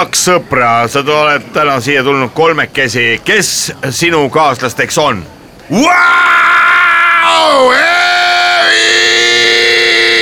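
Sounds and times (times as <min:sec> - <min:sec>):
speech: 0:00.0 - 0:06.5, 0:07.3 - 0:08.1
person screaming in a long strained wail: 0:05.8 - 0:10.2.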